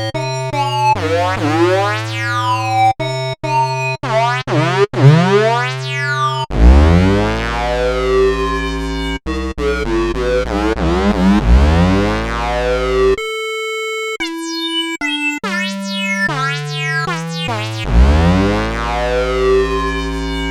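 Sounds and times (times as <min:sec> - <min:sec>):
Yamaha EX5R flanged square wave synthesizer: 0:00.2 - 0:13.2, 0:14.3 - 0:20.4.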